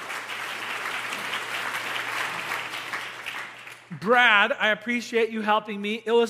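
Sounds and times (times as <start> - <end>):
room full of people applauding: 0.0 - 3.9
speech: 4.0 - 6.2.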